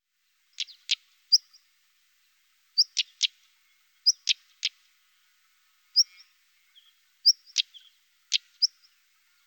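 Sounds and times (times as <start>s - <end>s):
European stonechat calls: 0.5s - 1.7s, 2.8s - 3.4s, 4.0s - 4.8s, 6.0s - 9.4s.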